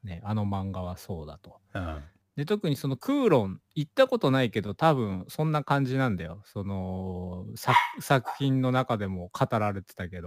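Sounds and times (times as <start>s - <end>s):
speech: 0.2s - 10.2s
dog barking: 7.7s - 8.6s.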